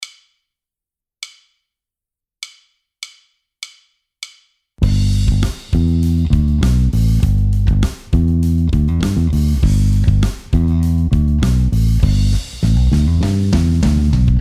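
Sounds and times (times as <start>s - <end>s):
bass phrase: 4.8s - 14.3s.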